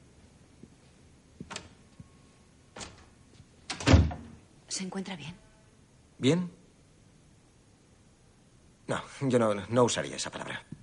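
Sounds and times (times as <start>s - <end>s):
office door handling clicks: 1.5s - 1.8s, 2.8s - 3.1s
office door closing: 2.8s - 3.1s, 3.7s - 4.4s
office door thud as it shuts: 3.7s - 4.4s
speech: 4.8s - 5.5s, 6.2s - 6.6s, 8.9s - 10.8s.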